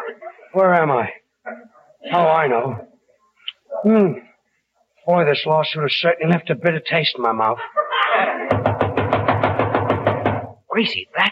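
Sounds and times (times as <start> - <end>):
speech: 0.5 - 2.9, 3.8 - 4.3, 5.0 - 8.7, 10.8 - 11.3
laughter: 7.4 - 8.6
sharp knocks on a door: 8.5 - 10.6.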